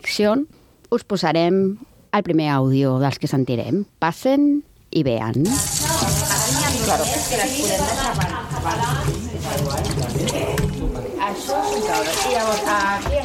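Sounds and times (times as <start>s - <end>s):
speech: 0.1s - 5.8s, 6.9s - 10.6s, 11.2s - 13.2s
water running in a kitchen: 5.4s - 13.2s.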